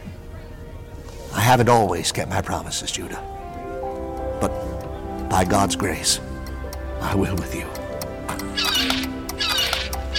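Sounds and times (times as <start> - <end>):
speech: 1.4 - 3.4, 4.4 - 4.7, 5.3 - 6.3, 7.0 - 7.8, 8.4 - 9.1
recorded seagull cry chime of a novelty pocket clock shaped like a cuckoo clock: 8.5 - 10.1.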